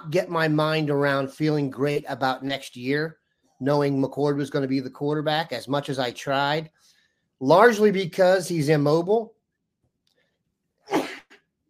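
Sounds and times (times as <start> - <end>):
speech: 0.0 - 9.4
loud sneeze: 10.8 - 11.5.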